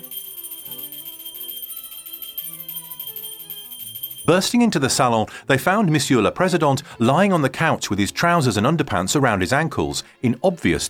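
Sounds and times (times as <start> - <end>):
hand bell rung frantically in a ground-floor salon to alert servants: 0.0 - 4.5
speech: 4.3 - 10.8.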